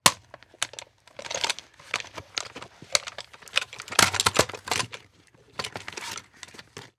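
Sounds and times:
rifle dropping: 0.1 - 5.0.

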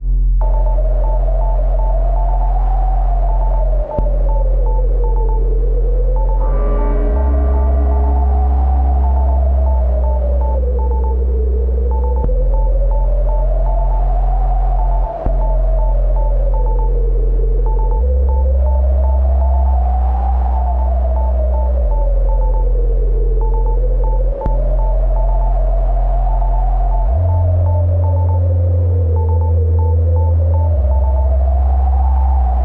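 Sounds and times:
tech drone bed production element: 0.0 - 32.6.

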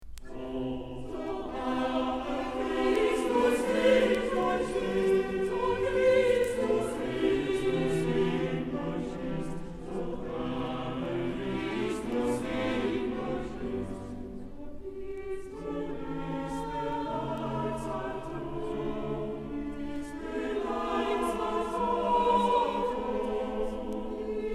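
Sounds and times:
choral motet: 0.1 - 24.5.

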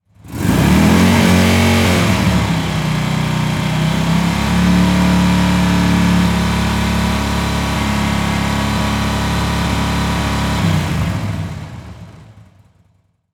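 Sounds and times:
motorcycle revving long: 0.2 - 12.5.

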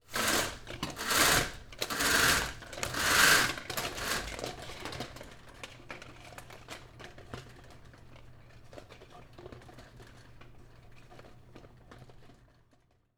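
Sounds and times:
household blinds closing: 0.1 - 4.5.

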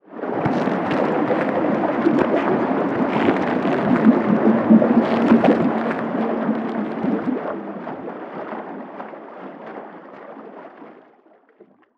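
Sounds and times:
underwater shark attack splashing and thrashing: 0.1 - 11.9.

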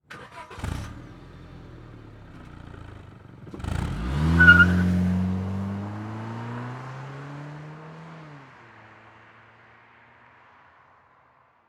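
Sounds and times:
Honda Civic engine starting: 0.0 - 6.5
Honda Civic driving off fast: 0.1 - 9.4.

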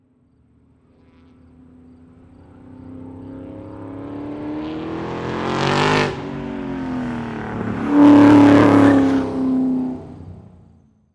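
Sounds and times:
race car driving by near a 180-degree turn: 2.7 - 10.8.

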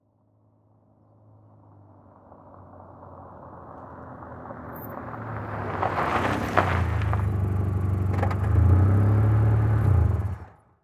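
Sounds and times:
Saturn car pulling up slowly and stopping on dirt road: 2.2 - 10.7.

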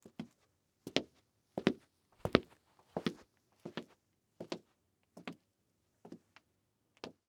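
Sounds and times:
cowboy boots footsteps walking by: 1.6 - 3.9.

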